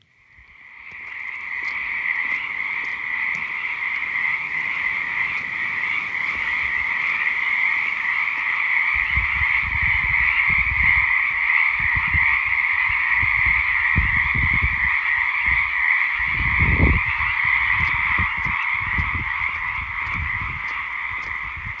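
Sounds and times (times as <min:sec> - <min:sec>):
chorus of frogs croaking and trilling after a week of good rain: 0:00.0 - 0:21.7.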